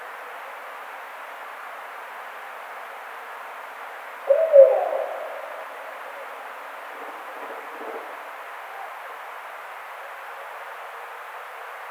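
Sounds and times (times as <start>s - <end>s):
barred owl hooting: 4.2s - 9.0s
constant hiss: 4.3s - 10.1s.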